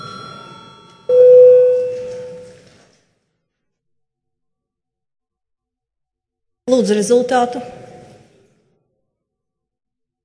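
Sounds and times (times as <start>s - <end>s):
parliament chamber electronic bell tone calling members for quorum registration: 0.0s - 2.6s
speech: 6.7s - 7.8s.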